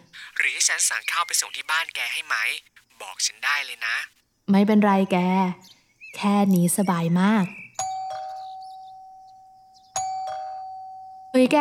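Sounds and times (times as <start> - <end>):
speech: 0.4 - 7.6, 11.4 - 11.5
doorbell chiming: 7.8 - 11.5.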